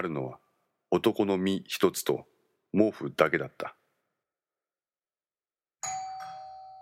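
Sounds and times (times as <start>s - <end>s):
speech: 0.0s - 3.8s
two-tone intercom doorbell chime: 5.8s - 6.7s.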